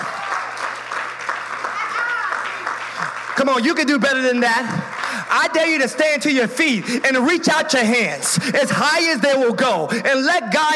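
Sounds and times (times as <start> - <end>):
large crowd applauding: 0.0 - 7.9
speech: 3.4 - 10.7.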